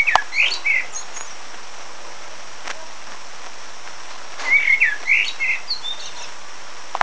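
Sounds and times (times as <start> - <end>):
birds tweeting in Dorset: 0.0 - 7.0.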